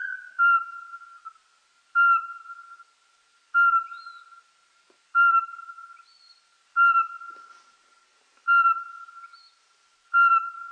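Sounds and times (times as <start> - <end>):
Eurasian pygmy owl giving piping whistled notes: 0.0 - 1.4, 2.0 - 2.9, 3.6 - 4.4, 5.2 - 7.5, 8.5 - 10.6.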